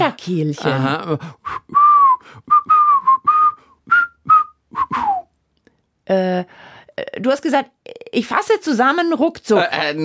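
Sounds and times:
speech: 0.0s - 2.5s, 6.1s - 10.0s
person whistling a short bouncy tune: 1.4s - 5.3s.

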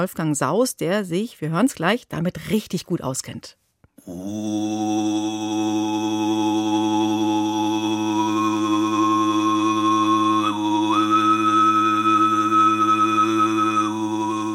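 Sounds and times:
speech: 0.0s - 6.8s
Mongolian throat singing deep steady drone: 4.0s - 14.5s
bright whistling overtone melody of Mongolian overtone singing: 9.9s - 14.5s.

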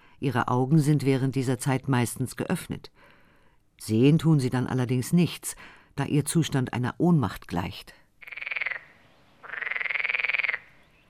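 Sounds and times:
speech: 0.2s - 3.2s, 3.8s - 8.4s
frog croaking: 8.2s - 11.0s.

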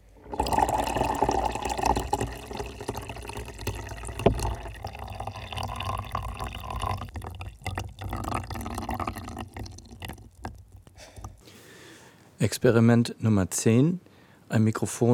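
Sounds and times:
water dripping onto a condenser microphone attached to a coffee machine: 0.0s - 11.5s
speech: 12.4s - 15.1s.

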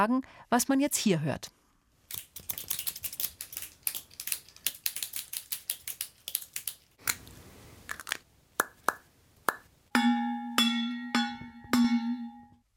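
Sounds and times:
speech: 0.0s - 2.2s
scissors snipping: 2.1s - 7.2s
metal water bottle ringing: 10.0s - 12.6s.

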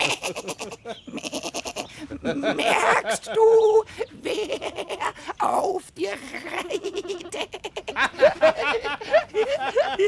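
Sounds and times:
laughter: 0.0s - 1.2s, 1.9s - 5.4s, 6.2s - 10.0s
small young goat bleating: 0.0s - 1.9s, 2.5s - 3.2s, 4.3s - 5.2s
speech: 2.2s - 4.1s.

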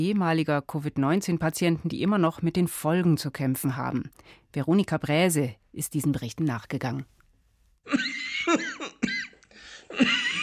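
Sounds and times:
speech: 0.0s - 7.2s, 7.8s - 8.6s, 9.9s - 10.2s
dry harsh hacking coughs: 7.9s - 10.4s.

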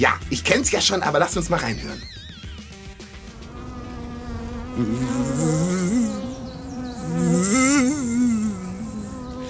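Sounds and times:
speech: 0.0s - 2.2s, 4.8s - 5.7s
swarm of bees buzzing: 1.4s - 9.4s.

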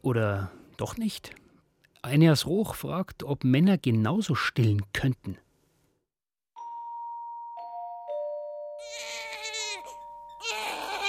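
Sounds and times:
speech: 0.0s - 1.4s, 2.0s - 5.4s
soft sustained chime-like tones: 6.6s - 11.0s
baby wailing: 8.8s - 11.0s.

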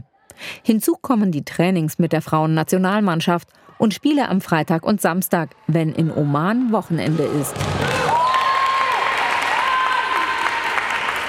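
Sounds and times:
speech: 0.6s - 8.0s
women spectators cheering and clapping at a women's football match in Oman: 6.0s - 11.2s.

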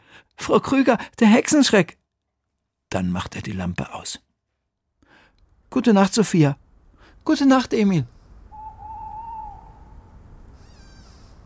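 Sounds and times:
speech: 0.5s - 2.0s, 2.9s - 4.3s, 5.7s - 6.6s, 7.2s - 8.2s
tawny owl hooting at night outside tents: 8.5s - 11.4s.

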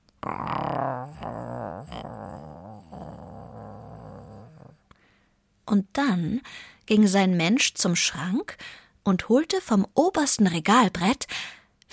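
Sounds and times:
voice imitating a cat purring contentedly: 0.1s - 4.9s
speech: 5.7s - 11.9s.

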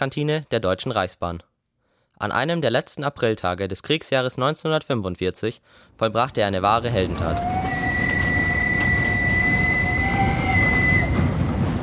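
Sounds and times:
speech: 0.0s - 1.5s, 2.2s - 7.8s
train pulling into a station rumbling: 6.6s - 11.8s
train brakes and wheels squealing: 7.2s - 11.8s.

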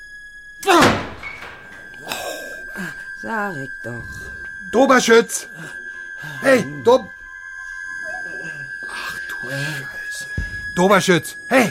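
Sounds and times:
door forced open with a hard shove: 0.6s - 2.1s
quieter rattling: 0.7s - 2.1s
speech: 3.2s - 7.2s, 9.4s - 10.0s, 10.8s - 11.6s.

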